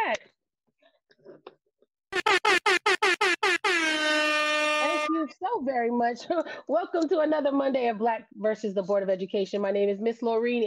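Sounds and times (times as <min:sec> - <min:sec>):
speech: 0:00.1 - 0:00.4, 0:05.5 - 0:10.6
air horn blasts: 0:02.2 - 0:05.2.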